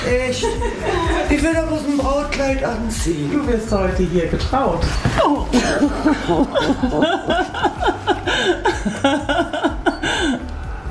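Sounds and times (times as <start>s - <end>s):
laughter: 0.0s - 1.6s, 5.5s - 10.6s
speech: 0.0s - 9.5s
person sniffling tearfully with shaky sobs: 8.0s - 9.0s, 9.9s - 10.8s.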